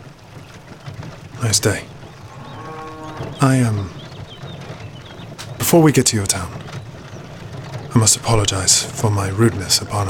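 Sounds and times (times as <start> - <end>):
speech: 1.4 - 1.9, 3.2 - 4.0, 5.7 - 6.8, 8.0 - 10.0
cow mooing: 2.2 - 3.8.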